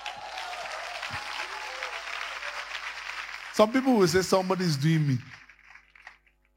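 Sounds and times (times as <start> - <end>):
audience clapping: 0.0 - 6.5
speech: 3.6 - 5.4.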